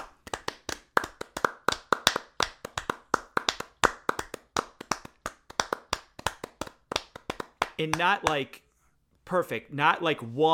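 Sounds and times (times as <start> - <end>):
classic opera-style hand clapping: 0.0 - 8.5
speech: 7.8 - 8.6, 9.3 - 10.5.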